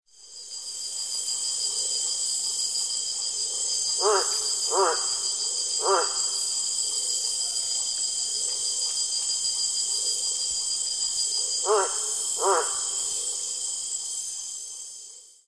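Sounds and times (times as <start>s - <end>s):
milk tree frog calling: 3.9s - 6.7s, 11.6s - 13.2s.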